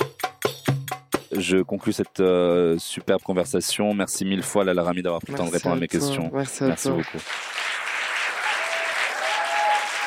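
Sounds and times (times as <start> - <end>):
speech: 1.3 - 7.5
sizable crowd applauding in a standing ovation: 6.4 - 10.0
faint whistles and cheers: 8.2 - 10.0.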